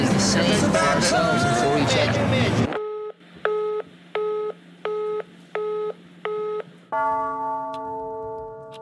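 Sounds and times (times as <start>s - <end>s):
speech: 0.2s - 2.7s
telephone dialing beeps, short dual-tone keypresses: 2.8s - 6.7s
steady sustained telephone line tone: 2.8s - 8.7s.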